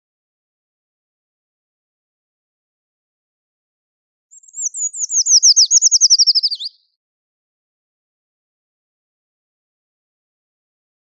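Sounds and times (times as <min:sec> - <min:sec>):
Eurasian treecreeper Certhia familiaris singing: 0:04.3 - 0:06.8.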